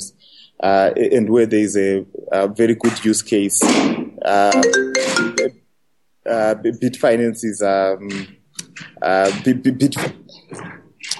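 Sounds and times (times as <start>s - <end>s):
speech: 0.6s - 5.6s, 6.3s - 10.8s
short electronic phone alert chimes: 4.5s - 5.6s.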